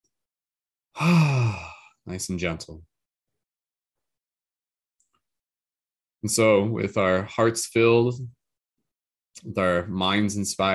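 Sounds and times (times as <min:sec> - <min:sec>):
speech: 0:01.0 - 0:01.3, 0:02.1 - 0:02.9, 0:06.2 - 0:08.4, 0:09.4 - 0:10.7
deep breath drawn in during a guided breathing exercise: 0:01.0 - 0:01.9.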